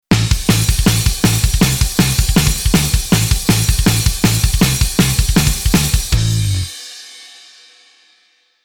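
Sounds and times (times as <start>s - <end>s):
bass metal music: 0.1s - 6.8s.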